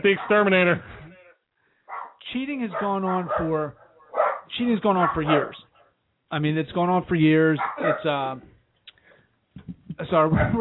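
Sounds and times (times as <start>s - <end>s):
small dog barking in a studio: 0.0s - 0.5s, 1.9s - 5.8s, 7.6s - 8.1s
speech: 0.0s - 1.0s, 2.3s - 3.8s, 4.5s - 5.7s, 6.3s - 8.5s, 9.6s - 10.6s.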